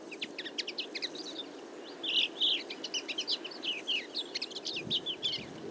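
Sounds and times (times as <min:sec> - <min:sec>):
flock of Common Linnets twittering while feeding in a field: 0:00.1 - 0:05.6.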